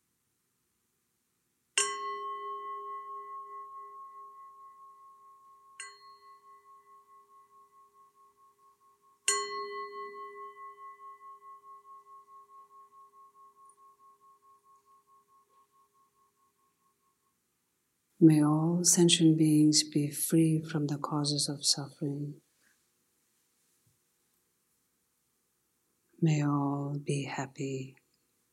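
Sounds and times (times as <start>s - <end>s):
meditation bell ringing: 1.8s - 17.4s
speech: 18.2s - 22.4s, 26.2s - 28.0s.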